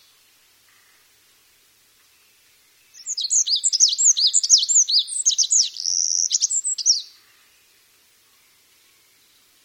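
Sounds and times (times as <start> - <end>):
olive-backed pipit singing: 3.0 - 7.2.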